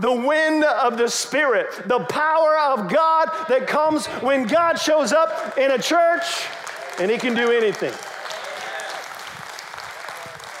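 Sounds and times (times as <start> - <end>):
speech: 0.0 - 8.1
audience clapping in a church: 4.9 - 10.5.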